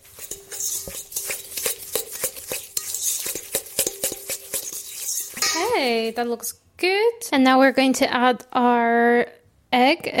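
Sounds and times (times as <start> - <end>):
fork mixing sugar and butter in a bowl: 0.0 - 6.5
speech: 5.8 - 10.1.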